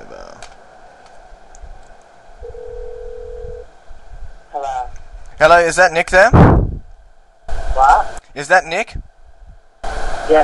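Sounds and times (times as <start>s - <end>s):
low rumbling telephone line hum: 0.0s - 10.4s
telephone ringback tone: 2.4s - 3.6s
speech: 5.4s - 6.5s, 8.4s - 9.0s.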